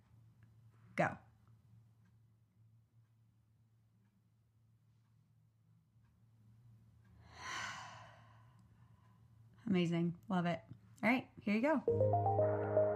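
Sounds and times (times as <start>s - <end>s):
speech: 1.0s - 1.2s, 9.7s - 12.8s
deep breath in and out: 7.2s - 9.0s.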